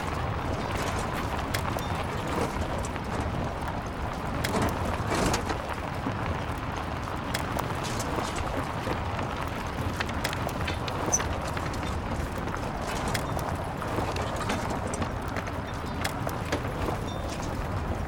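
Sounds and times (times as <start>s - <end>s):
dirt ambience loop: 0.0s - 18.0s.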